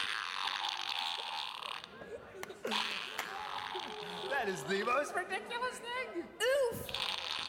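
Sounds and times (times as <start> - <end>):
toy fart machine playing buzzy fart noises: 0.0 - 1.9, 2.7 - 4.6, 6.9 - 7.4
speech: 4.4 - 6.9.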